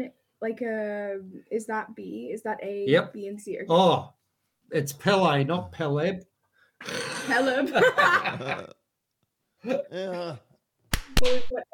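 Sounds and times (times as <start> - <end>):
speech: 0.0 - 8.8, 9.6 - 10.5, 11.1 - 11.7
drawn-out burp-like groan: 6.8 - 7.5, 9.6 - 10.5
laughter: 7.0 - 8.7
rough exclamation: 9.7 - 10.4
single sharp loud hand slap: 10.9 - 11.6.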